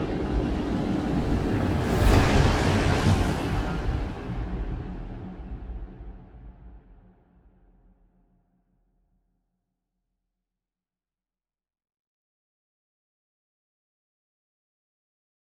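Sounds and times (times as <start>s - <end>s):
cruiser ship moving: 0.1s - 5.1s.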